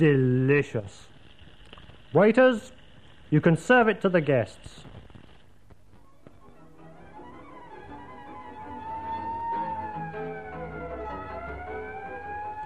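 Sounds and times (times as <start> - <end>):
speech: 0.0 - 1.1, 2.1 - 5.0
ambulance sirens wailing with rising and falling tones: 6.0 - 12.6
low rumble of engines: 7.7 - 12.6.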